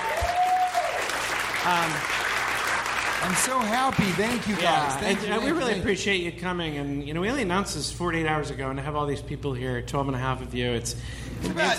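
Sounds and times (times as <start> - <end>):
small live audience clapping: 0.0 - 5.7
speech: 1.6 - 2.2, 3.2 - 11.7.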